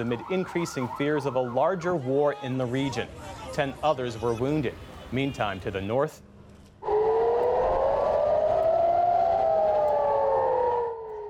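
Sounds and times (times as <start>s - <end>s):
civil defense sirens wailing near Israel's northern border with Lebanon: 0.0s - 2.2s, 6.8s - 11.2s
speech: 0.0s - 6.3s.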